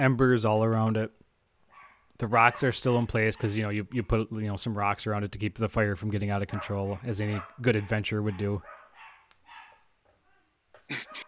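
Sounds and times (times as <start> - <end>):
speech: 0.0 - 1.2, 2.2 - 8.8
dog barking: 1.7 - 2.8, 6.5 - 11.2
dog whining yelps: 10.9 - 11.2.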